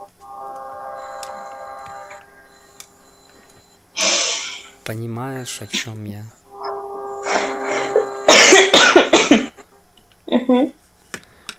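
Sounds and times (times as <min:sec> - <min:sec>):
speech: 0:04.9 - 0:06.4, 0:10.5 - 0:10.8
harsh breathy coughs: 0:08.3 - 0:09.7.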